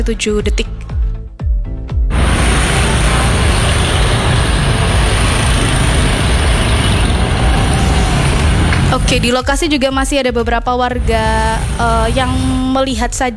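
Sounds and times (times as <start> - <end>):
speech: 0.0 - 0.8, 9.0 - 13.3
large fire blazing at garbage dump: 2.1 - 9.4, 11.0 - 12.7
descending tones: 2.1 - 9.6, 11.0 - 12.9.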